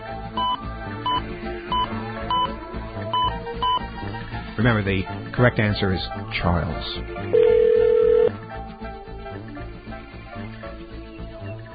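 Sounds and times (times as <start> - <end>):
telephone keypad dialing tones: 0.4 - 2.5, 7.4 - 8.3
speech: 4.6 - 7.4
telephone dial tone: 7.4 - 8.4.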